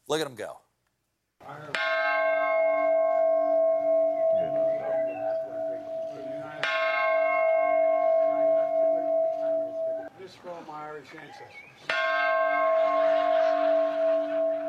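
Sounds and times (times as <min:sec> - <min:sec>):
speech: 0:00.1 - 0:00.6, 0:01.4 - 0:02.0, 0:11.0 - 0:13.4
large peace bell being struck: 0:01.5 - 0:10.1, 0:11.8 - 0:14.6.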